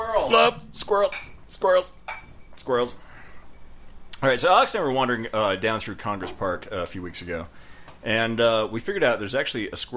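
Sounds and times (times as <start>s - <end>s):
speech: 0.2s - 3.0s, 4.2s - 9.9s
glasses clinking together in a toast: 1.0s - 4.1s.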